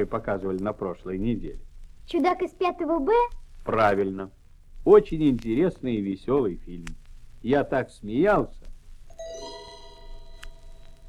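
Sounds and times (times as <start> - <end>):
speech: 0.0 - 9.3
soft hiss: 0.0 - 11.0
doorbell chime ringing: 9.1 - 11.0.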